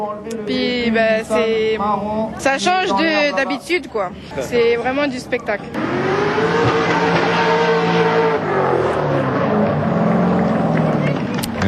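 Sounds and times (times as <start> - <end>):
speech: 0.0 - 6.8
drift car engines revving at the New Caledonia drift championship: 5.8 - 11.6.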